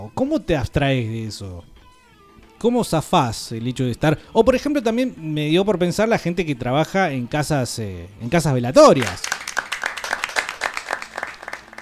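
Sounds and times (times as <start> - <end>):
speech: 0.0 - 1.8, 2.6 - 9.4
small group clapping: 9.0 - 11.8.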